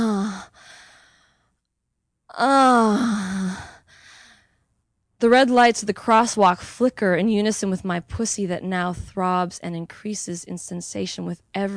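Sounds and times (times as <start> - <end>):
woman moaning aloud with wavering pitch: 0.0 - 0.5, 2.3 - 3.8
speech: 5.2 - 11.7.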